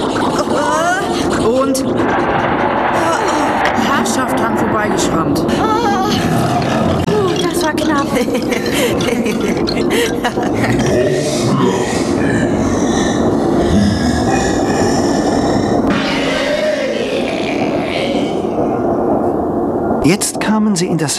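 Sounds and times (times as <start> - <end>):
train running on rails and stopping: 0.1 - 18.8
rattling clanking rail noise: 1.1 - 10.8
laughter: 3.0 - 15.0
speech: 4.9 - 5.8, 20.1 - 21.1.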